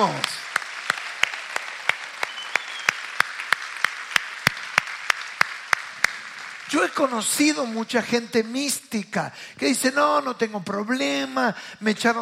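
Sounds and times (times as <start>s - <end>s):
speech: 0.0s - 0.4s, 6.7s - 12.1s
audience applauding in a steady rhythm: 0.0s - 7.6s.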